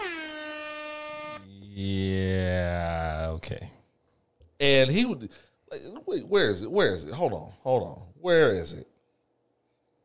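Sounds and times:
air horn sound effect blaring: 0:00.0 - 0:01.4
speech: 0:01.8 - 0:02.4, 0:04.6 - 0:08.9.

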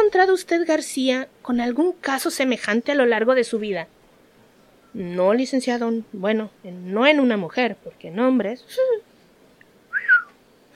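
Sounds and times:
speech: 0:00.1 - 0:04.0, 0:04.9 - 0:09.1
person whistling: 0:09.9 - 0:10.4.

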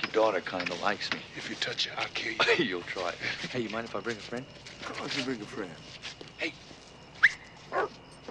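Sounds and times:
speech: 0:00.2 - 0:06.6
dog barking: 0:07.7 - 0:08.0.

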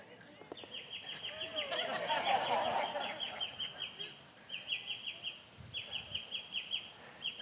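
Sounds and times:
birds singing with high rhythmic chirps: 0:00.5 - 0:07.4
laughter: 0:01.2 - 0:04.2.

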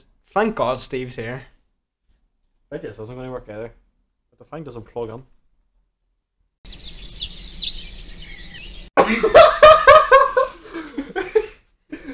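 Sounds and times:
speech: 0:00.0 - 0:01.5, 0:02.7 - 0:03.8, 0:04.4 - 0:05.3
high warbling bird song trilling: 0:06.7 - 0:09.0
loud choppy laughter: 0:09.0 - 0:12.1.

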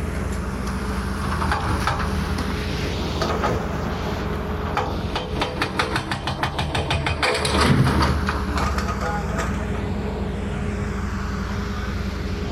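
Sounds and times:
demolition machine rumble at a pier by the sea: 0:00.0 - 0:12.5
demolition clattering and knocking at a pier by the sea: 0:01.2 - 0:02.2, 0:04.7 - 0:09.6.

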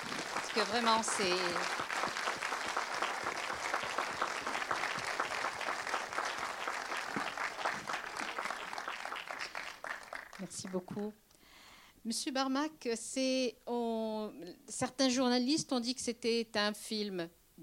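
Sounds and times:
audience applause: 0:00.0 - 0:10.8
speech: 0:00.6 - 0:02.2, 0:10.7 - 0:11.2, 0:12.0 - 0:17.4.

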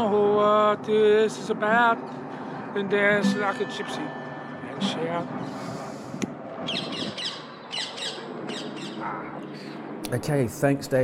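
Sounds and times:
speech: 0:00.0 - 0:04.2, 0:04.8 - 0:05.8, 0:10.1 - 0:11.0
bird squawking in harsh raspy bursts: 0:06.6 - 0:09.8.

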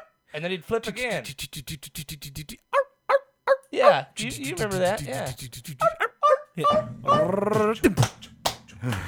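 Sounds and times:
speech: 0:00.3 - 0:02.7, 0:03.7 - 0:06.0, 0:06.6 - 0:09.0
person imitating a small dog yipping and barking: 0:01.3 - 0:08.0.

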